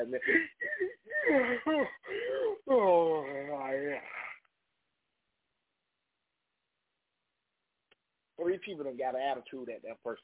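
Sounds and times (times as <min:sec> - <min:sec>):
speech: 0:00.0 - 0:04.2, 0:08.4 - 0:10.2
person doing an exaggerated drawn-out yawn: 0:00.6 - 0:04.4.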